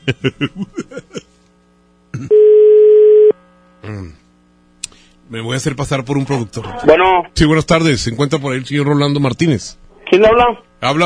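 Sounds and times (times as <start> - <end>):
speech: 0.0 - 1.1, 5.3 - 11.0
laughter: 0.0 - 1.4
telephone ringback tone on an outgoing call: 2.3 - 3.4.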